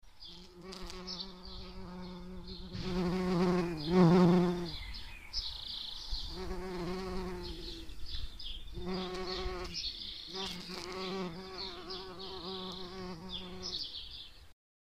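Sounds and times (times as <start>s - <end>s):
bumblebee: 0.2s - 5.0s, 6.2s - 8.1s, 8.7s - 13.9s.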